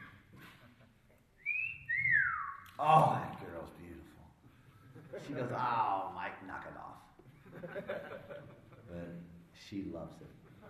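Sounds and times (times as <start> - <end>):
man whistling admiringly at his wife: 1.4 - 2.7
speech: 2.8 - 3.4, 5.2 - 10.4
laughter: 4.8 - 6.0, 7.3 - 9.0, 10.3 - 10.6.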